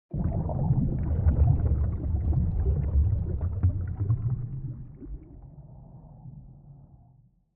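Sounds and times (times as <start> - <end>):
cinematic underwater texture: 0.1 - 7.4.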